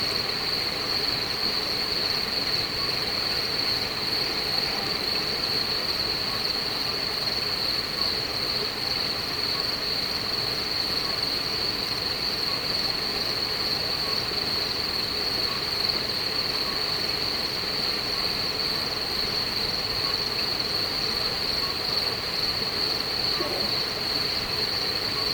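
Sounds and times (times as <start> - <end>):
cricket chorus trilling at night: 0.0 - 25.3
singing toads in Beaujolais: 21.4 - 25.3.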